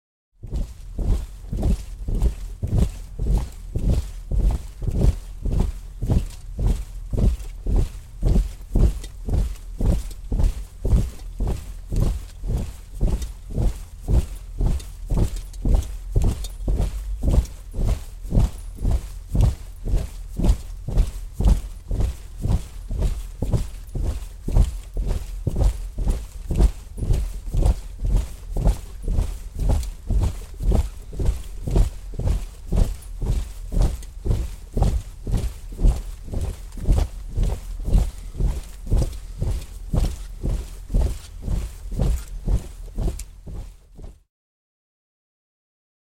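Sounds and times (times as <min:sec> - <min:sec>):
200 infantry men marching constantly: 0:00.5 - 0:43.8.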